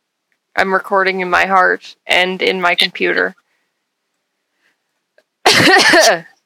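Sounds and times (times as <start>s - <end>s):
speech: 0.6s - 3.4s, 5.6s - 6.3s
person coughing while clearing throat: 5.5s - 6.3s.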